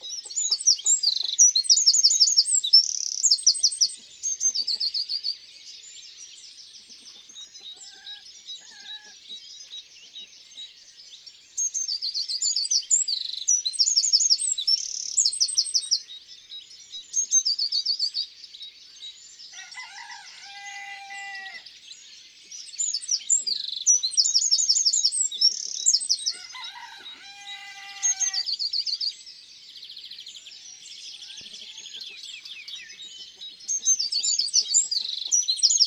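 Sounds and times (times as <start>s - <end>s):
Eurasian wren singing in the countryside: 0.0s - 5.3s, 11.6s - 16.1s, 22.6s - 29.2s, 29.8s - 35.8s
birds singing in the countryside: 0.0s - 35.8s.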